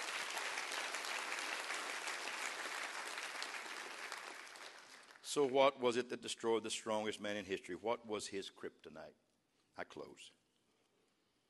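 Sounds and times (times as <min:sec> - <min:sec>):
audience clapping hands: 0:00.0 - 0:05.6
speech: 0:05.3 - 0:09.2, 0:09.8 - 0:10.4.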